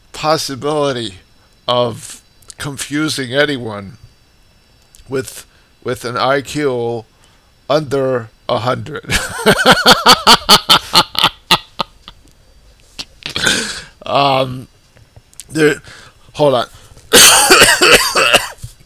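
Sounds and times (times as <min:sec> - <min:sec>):
speech: 0:00.2 - 0:04.0, 0:05.1 - 0:07.1, 0:07.7 - 0:10.8, 0:14.2 - 0:14.7, 0:15.5 - 0:18.3
laughter: 0:09.1 - 0:12.2, 0:17.1 - 0:18.4
loud hacking and raspy coughing fit: 0:13.2 - 0:13.9, 0:17.2 - 0:18.6
wheezing gasps: 0:13.3 - 0:14.0, 0:15.8 - 0:17.0.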